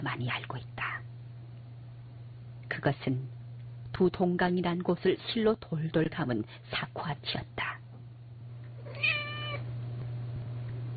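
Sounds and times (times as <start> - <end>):
speech: 0.0 - 1.1, 2.8 - 3.4, 4.0 - 7.8
steady low hum: 0.0 - 10.9
cat meowing: 8.8 - 9.7.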